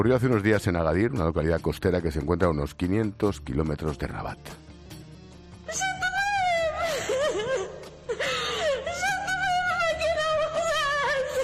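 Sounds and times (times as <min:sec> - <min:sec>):
speech: 0:00.0 - 0:04.6, 0:05.7 - 0:05.9
pregnant woman crying and wailing, seeking help: 0:05.6 - 0:11.4.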